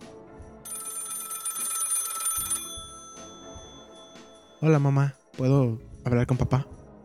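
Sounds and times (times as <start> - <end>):
telephone ringing: 0.7 - 4.6
speech: 4.6 - 6.8.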